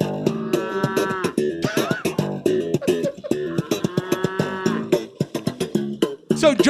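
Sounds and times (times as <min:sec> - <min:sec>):
cows mooing in a pasture: 0:00.1 - 0:01.4, 0:03.1 - 0:05.1
laughter: 0:00.5 - 0:04.9
speech: 0:06.5 - 0:06.6.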